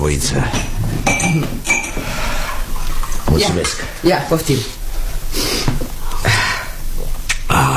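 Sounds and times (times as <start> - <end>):
speech: 0.0 - 1.8, 3.3 - 5.5
quiet low hum: 0.0 - 7.7
glass clinking as cold water is served: 0.5 - 3.8.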